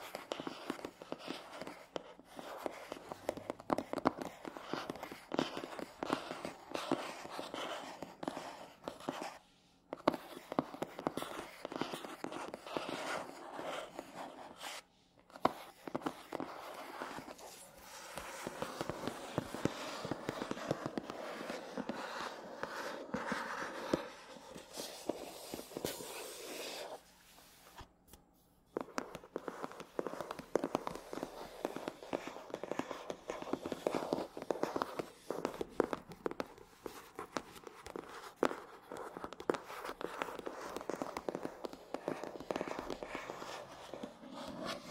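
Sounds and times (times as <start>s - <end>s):
scratchy tapping on matte surfaces: 0.0s - 27.1s, 27.7s - 44.9s.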